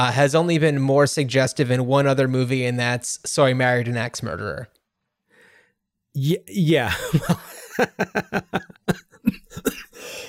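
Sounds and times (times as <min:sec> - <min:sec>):
speech: 0:00.0 - 0:04.8, 0:06.1 - 0:09.8
laughter: 0:06.8 - 0:09.8
coughing fit: 0:08.8 - 0:10.2.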